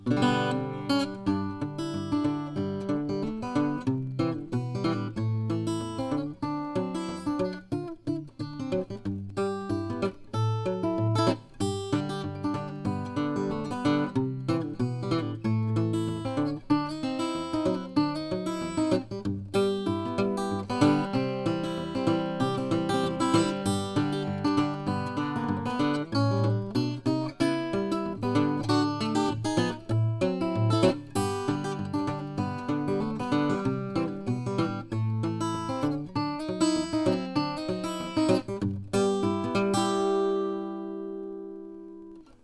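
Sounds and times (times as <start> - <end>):
1934 Gibson L-00 acoustic guitar: 0.0 - 42.4.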